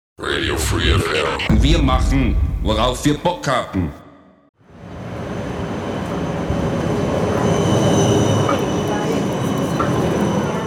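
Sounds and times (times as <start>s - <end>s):
speech: 0.2s - 4.0s
tram rolling along the rails in Ulm: 4.6s - 10.6s.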